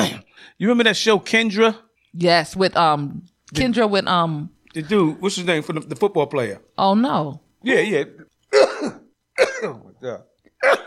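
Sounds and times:
person coughing to clear a bug from throat in a studio: 0.0s - 0.4s, 8.5s - 9.9s, 10.6s - 10.8s
speech: 0.0s - 9.0s, 9.6s - 10.8s.

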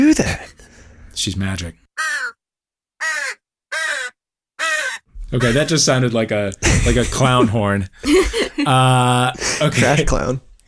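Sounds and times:
speech: 1.2s - 2.1s, 5.3s - 10.5s
crow cawing: 2.0s - 2.4s, 3.0s - 5.1s
laughter: 6.6s - 10.2s.

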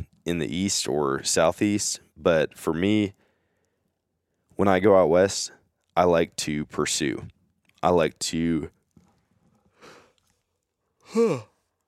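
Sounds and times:
speech: 0.2s - 3.2s, 4.6s - 8.8s, 11.1s - 11.5s
person yawning: 11.0s - 11.6s.

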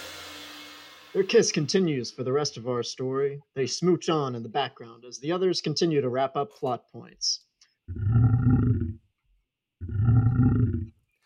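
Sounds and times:
speech: 1.2s - 8.2s
lion roaring: 7.9s - 9.0s, 9.8s - 10.9s.

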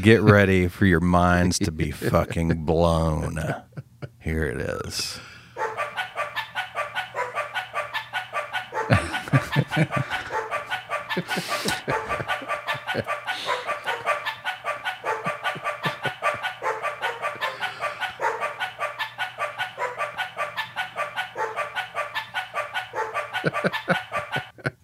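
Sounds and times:
speech: 0.0s - 5.3s, 8.9s - 10.2s, 11.2s - 13.7s, 23.4s - 24.1s
laughter: 1.6s - 4.2s, 8.4s - 18.8s, 21.8s - 24.8s
dog barks pitched into the guitar part of a song: 5.6s - 8.0s, 16.6s - 17.6s, 18.2s - 19.0s, 19.7s - 20.4s, 21.2s - 23.4s.

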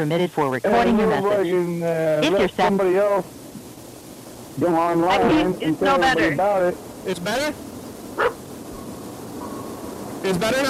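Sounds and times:
speech: 0.0s - 3.4s, 4.6s - 8.4s, 10.2s - 10.6s
steady low noise: 0.0s - 10.6s
dog barking: 8.2s - 9.7s.

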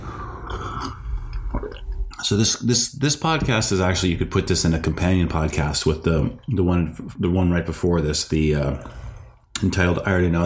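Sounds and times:
swallow: 0.0s - 2.7s
sipping and slurping hot coffee: 0.0s - 2.8s
speech: 2.2s - 9.0s, 9.6s - 10.4s.

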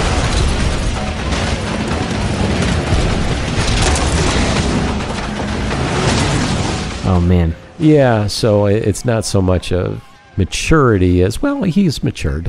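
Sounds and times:
explosions as vehicle crashes through houses: 0.0s - 9.1s
crashing debris: 0.0s - 10.0s
speech: 7.1s - 12.4s.

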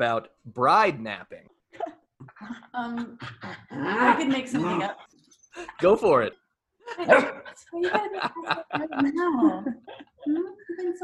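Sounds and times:
speech: 0.0s - 1.8s, 2.4s - 11.0s
laughter: 6.8s - 11.0s
dog barking and yipping: 7.0s - 7.5s.

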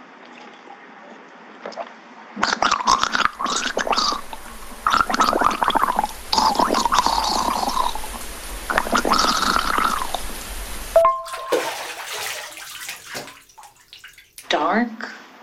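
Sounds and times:
water gurgling and bubbling as a person turns into water: 2.4s - 13.8s.

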